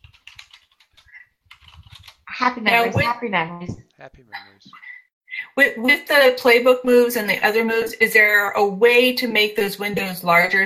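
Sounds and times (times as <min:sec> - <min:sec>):
clicking and typing on a computer keyboard: 0:00.0 - 0:02.2
speech: 0:02.4 - 0:04.9, 0:05.6 - 0:10.6.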